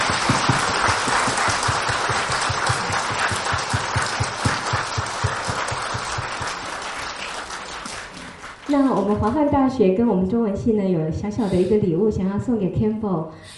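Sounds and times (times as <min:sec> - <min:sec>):
audience applause: 0:00.0 - 0:09.2
speech: 0:08.7 - 0:13.5.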